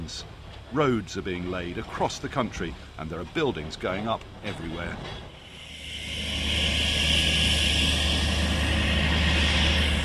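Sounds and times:
speech: 0.1 - 5.3
low rumble: 5.0 - 10.0
jet engines roaring at the airport in Freetown: 5.4 - 10.0.

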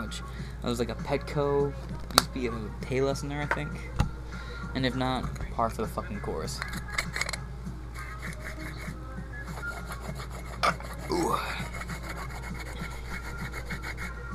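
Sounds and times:
speech: 0.1 - 4.0, 4.7 - 6.8
hand herb grinder breaking up cannabis bud: 8.0 - 14.2.

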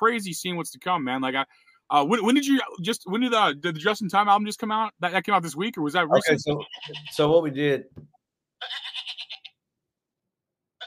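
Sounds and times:
speech: 0.0 - 8.7
phone ringtone of a goat bleat: 6.1 - 7.2, 8.6 - 9.5.

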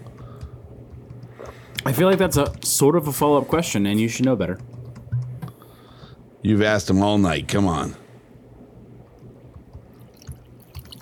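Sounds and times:
speech: 1.4 - 4.8, 6.4 - 8.0
whiskey pouring from a bottle: 9.9 - 11.0.

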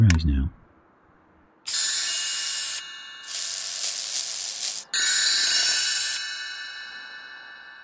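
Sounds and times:
speech: 0.2 - 0.6, 1.6 - 1.8
spray hissing: 1.7 - 6.2.

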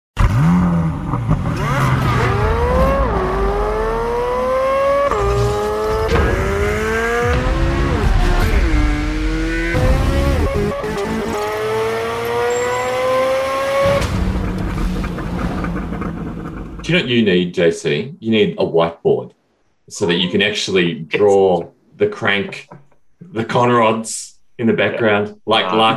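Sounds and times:
Chevrolet Corvette Z06 engine screaming at high revs through gear pulls: 0.2 - 16.6
speech: 16.9 - 25.9.

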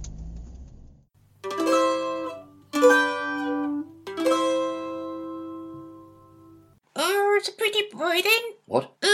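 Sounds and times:
sustained musical tone: 1.4 - 6.8
speech: 8.1 - 8.9.

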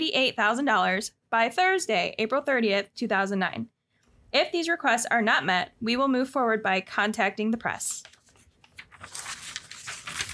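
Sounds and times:
speech: 0.0 - 3.7, 4.3 - 8.2
paper crinkling and rustling: 7.8 - 10.3.

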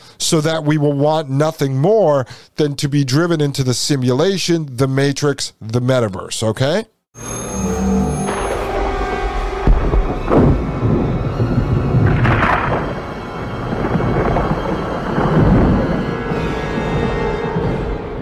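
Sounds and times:
speech: 0.3 - 7.4
deep rumbling thunder from lightning: 7.6 - 18.2.

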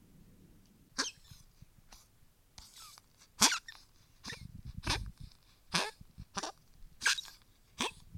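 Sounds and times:
dog whiny squeal: 1.0 - 1.4, 2.7 - 5.1, 5.7 - 8.0.

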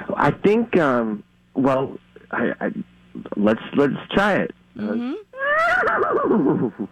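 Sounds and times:
speech: 0.2 - 6.9
person imitating a horse whinny: 4.8 - 6.9.

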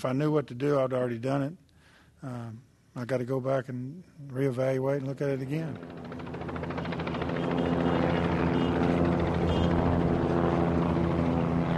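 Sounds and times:
speech: 0.0 - 1.6, 2.2 - 6.3
helicopters and planes circling over the ballpark in Arlington: 4.9 - 11.7.

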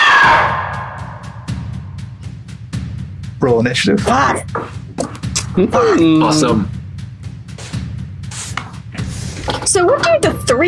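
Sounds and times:
harsh monstrous shriek of a large undead phoenix: 0.0 - 1.1
speech: 3.4 - 4.8, 5.6 - 6.8, 9.7 - 10.6.

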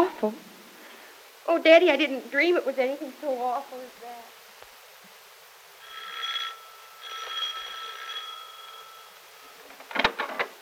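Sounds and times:
speech: 0.2 - 0.5, 1.5 - 4.4
doorbell ringing in long buzzing tones: 5.8 - 9.7.

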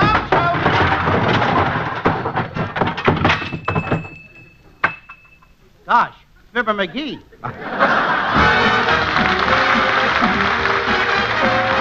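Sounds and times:
junk tumbling out of a closet: 0.0 - 5.4
tinkle: 3.4 - 5.6
speech: 5.9 - 10.6
laughter: 6.8 - 11.6.

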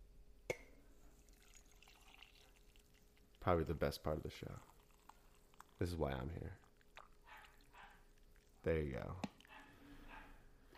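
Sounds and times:
coffee being poured into a cup: 1.1 - 9.5
speech: 3.4 - 4.7, 5.8 - 6.6, 8.6 - 9.3.

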